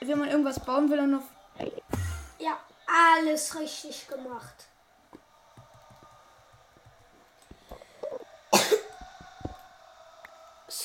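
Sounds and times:
speech: 0.1 - 1.8, 2.4 - 4.7
harsh cough from a person having a coughing fit: 8.5 - 8.9.

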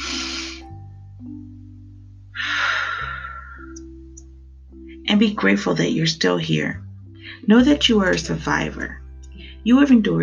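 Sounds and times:
soft sustained low musical tones: 0.0 - 10.2
deep breath: 2.4 - 3.8
speech: 5.1 - 6.8, 7.4 - 9.0, 9.6 - 10.2.

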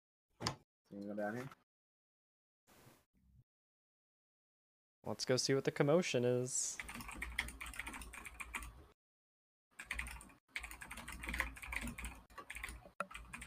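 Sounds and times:
speech: 0.9 - 1.6, 5.0 - 7.3
furious typing on a computer keyboard: 6.8 - 8.7, 9.8 - 13.4.

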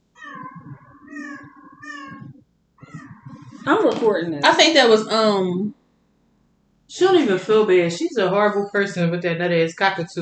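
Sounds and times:
cat meowing: 0.2 - 3.8
speech: 3.6 - 5.8, 6.9 - 10.2.

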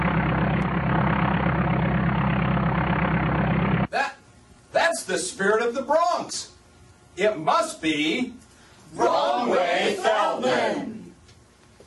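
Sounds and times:
biplane propeller engine droning while flying upside down: 0.0 - 3.9
speech: 5.1 - 6.6, 7.2 - 11.0.

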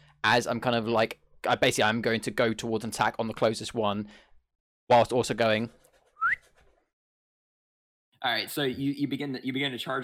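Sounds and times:
speech: 0.2 - 4.3, 4.9 - 6.4, 8.2 - 10.0
person whistling a signal: 6.2 - 6.5.

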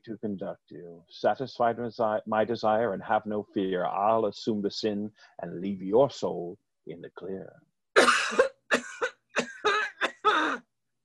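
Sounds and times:
speech: 0.0 - 8.5
woman coughing in a harsh fit: 8.0 - 10.6.

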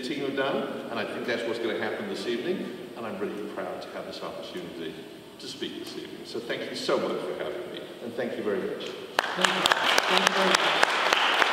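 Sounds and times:
speech: 0.1 - 10.9
audience applause: 9.1 - 11.5.

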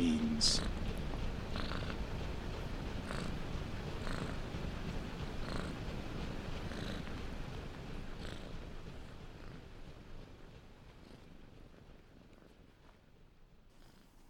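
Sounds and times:
cat purring loudly: 0.2 - 9.6, 11.0 - 11.3, 13.7 - 14.2
speech: 0.4 - 0.7.

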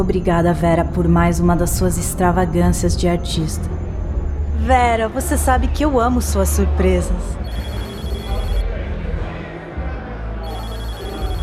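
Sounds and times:
speech: 0.0 - 3.8, 4.6 - 7.7
dense noisy background: 0.0 - 11.4
telephone ringing with an incoming call: 7.4 - 8.6, 10.4 - 11.4.

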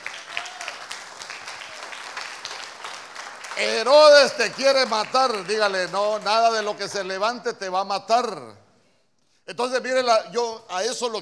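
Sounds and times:
crowd applauding: 0.0 - 7.3
speech: 3.6 - 8.6, 9.5 - 11.2.

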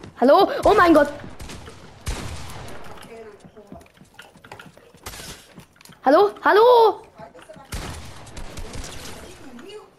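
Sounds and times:
speech: 0.2 - 1.3, 6.0 - 7.0
rapid video game gunfire: 0.5 - 3.8, 7.6 - 9.8.

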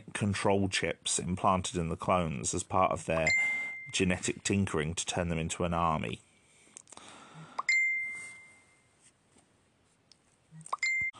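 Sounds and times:
speech: 0.2 - 6.3
mobile phone notification chime: 7.6 - 8.8, 10.8 - 11.1.

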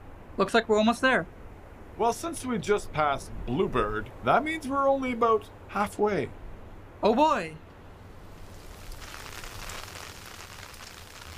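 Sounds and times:
speech: 0.4 - 1.4, 2.0 - 6.4, 7.0 - 7.6
hail pattering steadily against a nearby surface: 8.4 - 11.3.

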